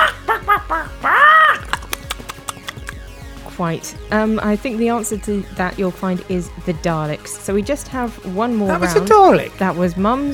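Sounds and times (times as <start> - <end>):
person imitating a chicken clucking and squawking: 0.0 - 2.9
sharp clicks and taps: 1.6 - 3.6
speech: 3.6 - 10.3.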